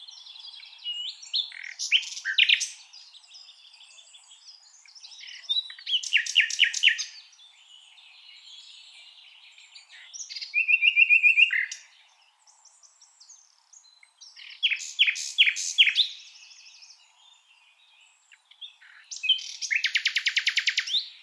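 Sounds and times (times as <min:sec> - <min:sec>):
common nightingale Luscinia megarhynchos song: 0:00.0 - 0:21.2.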